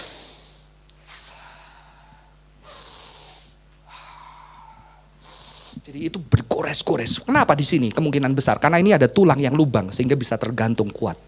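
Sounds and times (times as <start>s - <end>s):
person imitating the strained gasping breaths of a man hanging on a cross: 0.0s - 5.8s
speech: 5.8s - 11.2s.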